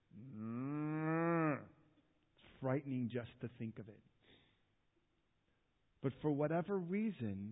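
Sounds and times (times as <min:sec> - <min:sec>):
cow mooing: 0:00.3 - 0:01.7
speech: 0:02.6 - 0:04.2, 0:06.0 - 0:07.5.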